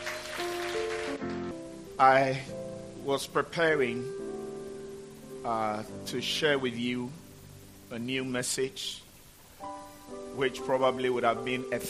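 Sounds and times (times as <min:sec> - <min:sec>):
audience hand clapping: 0:00.0 - 0:01.6
speech: 0:02.0 - 0:04.2, 0:05.4 - 0:07.2, 0:07.9 - 0:09.0, 0:10.4 - 0:11.8.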